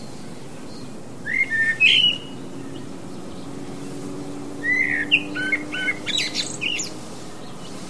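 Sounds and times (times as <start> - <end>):
blackbird calling: 0.0 - 7.8
steady low hum: 0.0 - 7.8.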